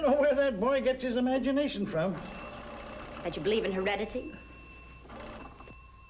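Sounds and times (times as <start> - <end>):
speech: 0.0 - 2.5, 3.2 - 4.4
telephone bell ringing: 2.0 - 6.0.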